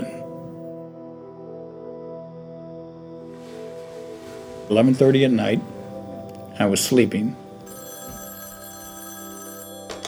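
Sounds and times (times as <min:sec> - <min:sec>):
speech: 0:04.7 - 0:05.8, 0:06.6 - 0:07.4
telephone ringing with a bright electronic tone: 0:06.3 - 0:10.0.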